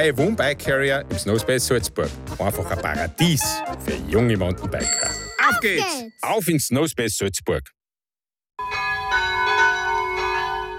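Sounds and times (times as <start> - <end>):
speech: 0.0 - 7.8
church bells of the St. Rupert church centre ringing at noon: 8.6 - 10.7.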